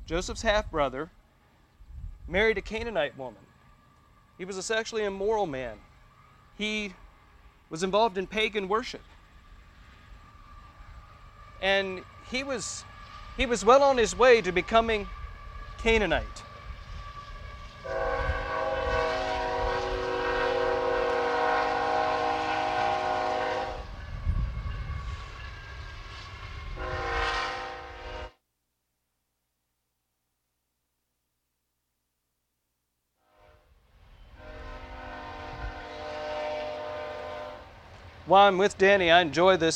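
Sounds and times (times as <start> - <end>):
train rumbling past: 0.0 - 28.4, 33.4 - 39.7
speech: 0.1 - 1.2, 2.3 - 3.5, 4.4 - 5.9, 6.6 - 7.0, 7.7 - 9.1, 11.6 - 15.2, 15.8 - 16.5, 38.3 - 39.7
train horn blaring: 10.2 - 28.4, 33.2 - 37.8.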